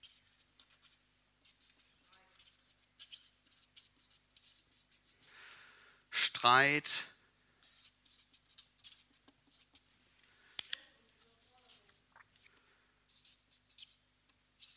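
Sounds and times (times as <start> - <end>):
pen handwriting strokes and light taps: 0.0 - 5.2, 7.6 - 9.8, 13.1 - 14.0, 14.6 - 14.7
speech: 6.4 - 7.1.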